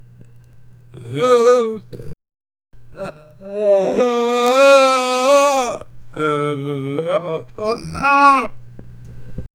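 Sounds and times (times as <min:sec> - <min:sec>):
man making anguished sounds: 0:01.0 - 0:02.2, 0:03.0 - 0:08.6.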